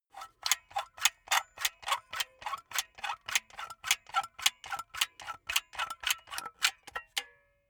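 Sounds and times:
empty silicone gun pumping: 0.2 - 7.1.

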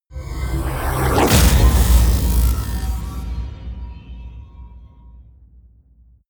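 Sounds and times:
mechanical robotic whoosh: 0.2 - 5.0.

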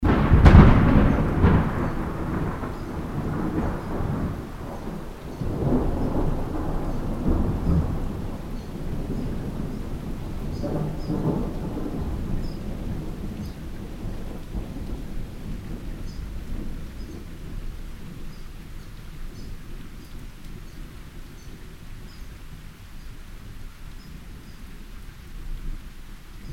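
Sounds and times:
thunder striking: 0.0 - 18.3.

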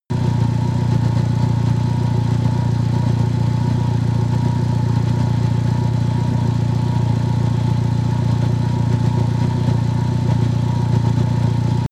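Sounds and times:
damaged engine idling: 0.1 - 11.8.

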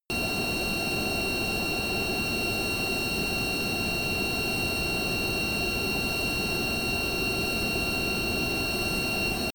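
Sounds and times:
military jet C-17 Globemaster turbine at full power: 0.1 - 9.5.

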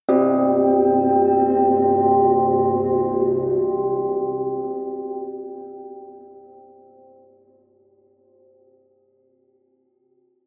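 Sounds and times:
melodic odd sweet bell: 0.1 - 7.2.

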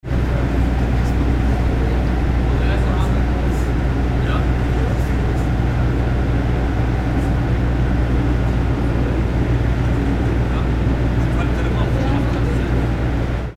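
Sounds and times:
boat barge driving slow: 0.0 - 13.5.

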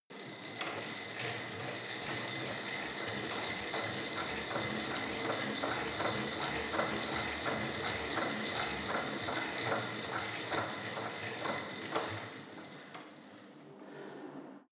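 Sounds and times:
indoor bike at medium pace: 0.1 - 14.7.

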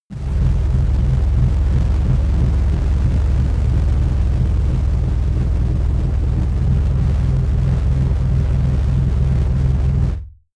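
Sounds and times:
rumbling noise drone: 0.0 - 10.4.

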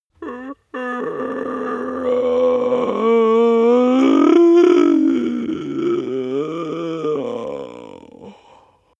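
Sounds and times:
man growling: 0.2 - 8.4
exhale: 8.2 - 8.9.

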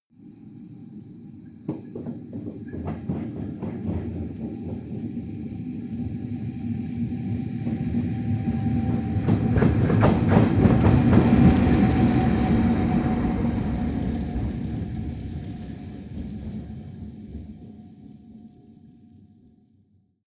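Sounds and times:
train locomotive driving by: 1.2 - 17.9
train bump: 1.7 - 5.2, 8.8 - 16.7.

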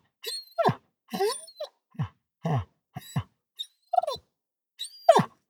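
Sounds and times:
dog squeaking: 0.3 - 0.7, 3.9 - 4.2, 4.8 - 5.2.

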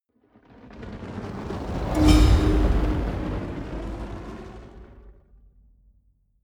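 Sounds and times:
magic fire bowl whoosh: 0.5 - 5.0.

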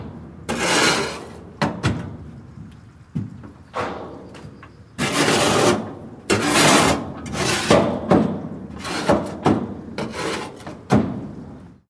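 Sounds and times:
cattle trough being cleaned: 0.5 - 1.5, 5.0 - 8.0, 8.7 - 10.9.

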